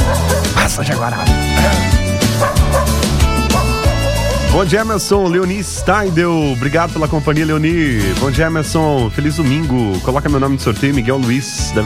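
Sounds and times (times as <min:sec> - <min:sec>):
dog whimpers: 0:00.0 - 0:04.6
several dogs barking and yipping: 0:00.0 - 0:06.8
speech: 0:00.8 - 0:02.6, 0:04.5 - 0:11.8.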